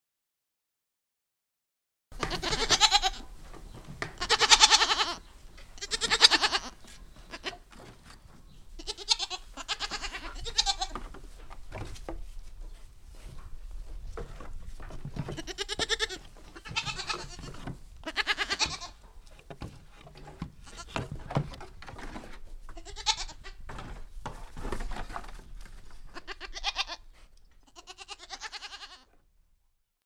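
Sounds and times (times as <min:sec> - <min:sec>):
goat kids in a barn in Ardèche: 0:02.2 - 0:29.7.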